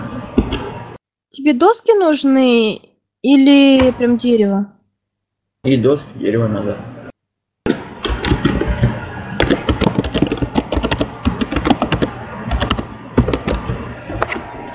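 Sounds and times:
speech: 1.4 - 4.8, 5.6 - 6.9
computer keyboard typing: 7.7 - 14.7.

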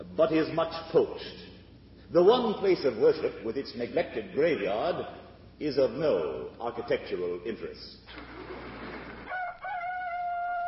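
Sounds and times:
speech: 0.2 - 1.5, 2.1 - 8.3
rooster crowing on a spring morning: 9.2 - 10.6.

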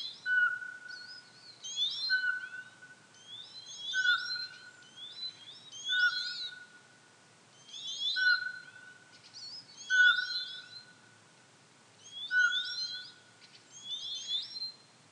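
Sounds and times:
busy high twittering songbirds: 0.0 - 6.9, 7.5 - 11.1, 12.0 - 15.0
Eurasian pygmy owl whistles: 0.2 - 6.7, 7.6 - 8.9, 9.7 - 10.8, 12.0 - 13.2, 13.8 - 14.8.

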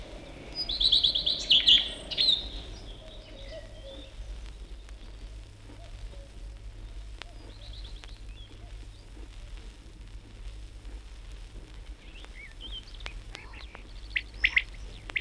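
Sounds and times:
common redstart singing: 0.0 - 6.0, 12.0 - 15.1
low steady outdoor hum: 0.0 - 15.1.

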